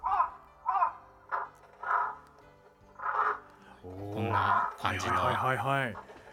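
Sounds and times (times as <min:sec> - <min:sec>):
crow alarm caws played through a loudspeaker: 0:00.0 - 0:02.2, 0:04.3 - 0:04.8
speech: 0:04.8 - 0:06.1.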